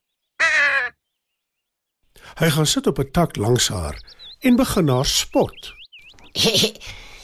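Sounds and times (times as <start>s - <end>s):
crow cawing: 0.4s - 1.0s
speech: 2.4s - 5.8s, 6.4s - 7.0s
laughter: 6.3s - 7.0s.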